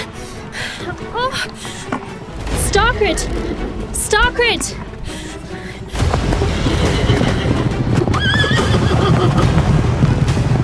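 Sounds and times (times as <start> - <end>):
galloping hooves of horses charging in a packed stable: 0.5 - 10.6
speech: 0.8 - 2.0, 2.8 - 4.8
horses whinnying in a packed stable: 5.9 - 9.5.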